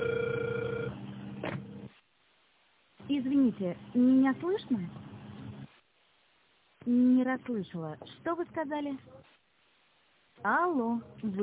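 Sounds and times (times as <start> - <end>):
telephone ringback tone over the line while dialing: 0.0 - 1.0
telephone line noise and hiss: 1.4 - 11.4
speech: 3.1 - 5.0, 6.9 - 9.2, 10.4 - 11.4.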